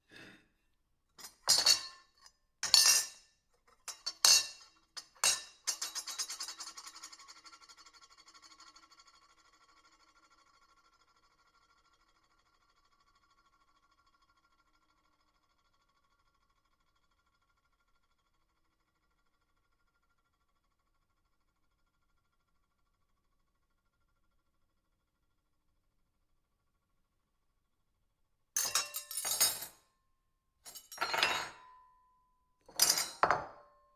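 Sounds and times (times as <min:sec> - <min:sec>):
silverware on plate: 0:01.2 - 0:02.0, 0:02.6 - 0:03.2, 0:03.9 - 0:07.2, 0:28.6 - 0:29.8, 0:30.7 - 0:31.8, 0:32.7 - 0:33.7.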